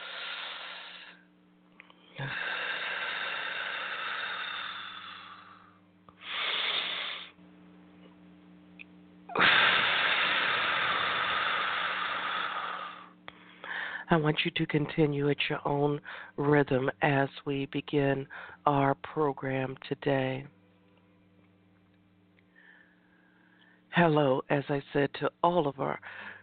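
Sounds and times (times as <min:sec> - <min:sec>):
deep breathing during a guided breathing exercise: 0:00.0 - 0:01.3, 0:02.0 - 0:07.4, 0:09.3 - 0:14.1, 0:16.0 - 0:16.4, 0:18.3 - 0:18.6, 0:22.4 - 0:23.9, 0:26.0 - 0:26.4
low hum: 0:00.0 - 0:26.4
speech: 0:02.2 - 0:02.6, 0:14.1 - 0:20.6, 0:24.0 - 0:26.3.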